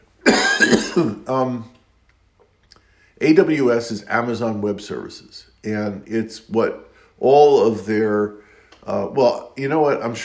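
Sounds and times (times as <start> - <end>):
person coughing: 0.2 - 1.4
voiced throat clearing: 0.3 - 1.4
speech: 1.0 - 1.8, 3.2 - 10.2.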